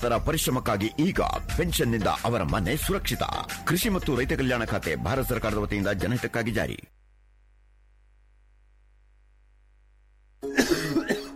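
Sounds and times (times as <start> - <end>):
speech: 0.0 - 7.0
person coughing harsh persistent bursts: 10.4 - 11.3.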